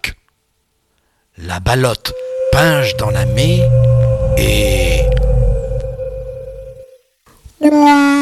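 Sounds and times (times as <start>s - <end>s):
speech: 1.5s - 5.2s, 7.7s - 8.1s
deep resonant whale moan: 1.9s - 6.9s
low underwater-like rumble: 2.0s - 6.9s.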